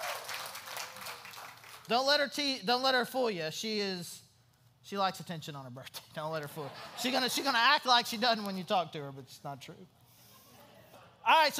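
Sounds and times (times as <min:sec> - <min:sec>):
small group clapping for a birthday: 0:00.0 - 0:01.9
speech: 0:01.9 - 0:04.2, 0:04.9 - 0:10.0, 0:11.2 - 0:11.5.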